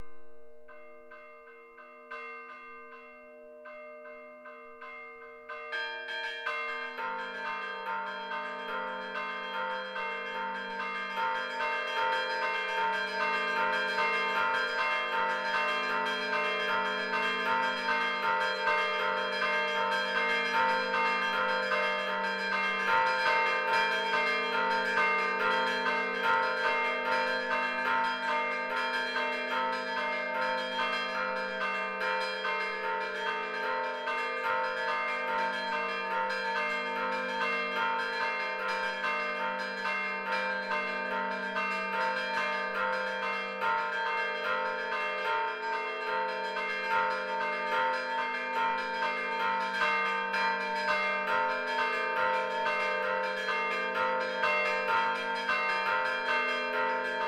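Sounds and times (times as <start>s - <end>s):
church bells ringing festively from a bell tower: 0.0s - 57.2s.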